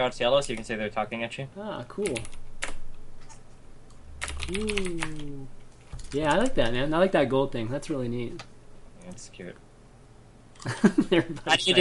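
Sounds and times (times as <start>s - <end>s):
speech: 0.0s - 2.4s, 4.5s - 9.6s, 10.6s - 11.7s
low steady hum: 0.0s - 11.7s
typing on a computer keyboard: 4.2s - 5.2s
laughter: 10.6s - 11.7s.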